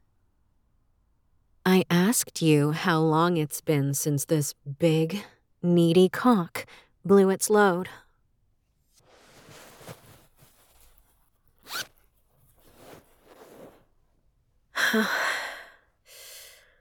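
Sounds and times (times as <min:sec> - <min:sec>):
speech: 0:01.8 - 0:08.0, 0:14.9 - 0:15.3
clothing zipper being unzipped: 0:09.0 - 0:11.0, 0:11.6 - 0:13.9.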